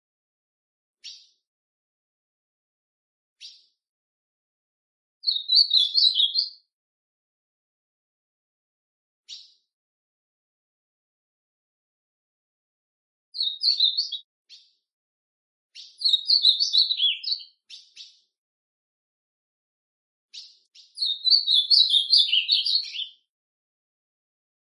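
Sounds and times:
ultramarine grosbeak singing warbled phrases: 1.0 - 1.4, 3.4 - 3.7, 5.2 - 6.6, 9.3 - 9.6, 13.4 - 14.8, 15.8 - 18.3, 20.3 - 23.3.

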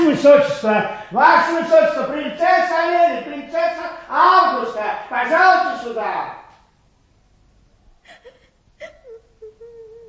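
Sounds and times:
speech: 0.2 - 6.4
young girl crying: 8.1 - 10.0.

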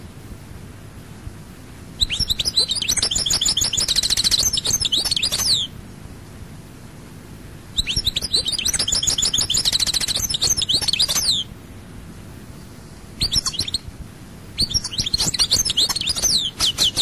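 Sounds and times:
European goldfinch singing: 2.0 - 5.7, 7.8 - 11.5, 13.2 - 13.8, 14.6 - 17.0.

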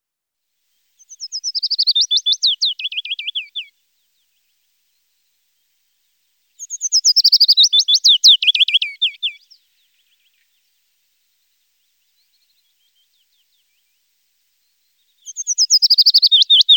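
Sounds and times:
willow warbler song in Germany, Austria and Switzerland: 0.7 - 16.7.

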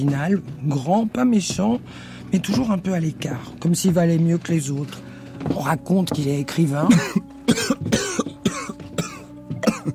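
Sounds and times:
speech: 0.0 - 8.0
deep hollow cough: 6.8 - 9.9.

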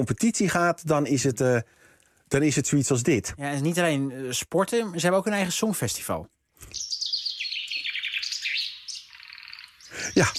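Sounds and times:
speech: 0.0 - 7.0, 10.2 - 10.3
chaffinch singing: 6.6 - 10.3.

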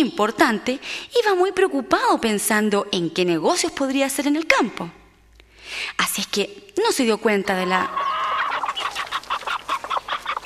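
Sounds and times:
speech: 0.0 - 5.0, 5.7 - 8.1
hen clucking: 7.6 - 10.4.

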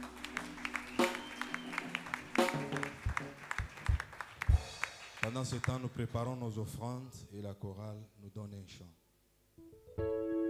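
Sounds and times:
church congregation applauding during a Sunday worship service: 0.0 - 6.4
speech: 5.3 - 9.0.

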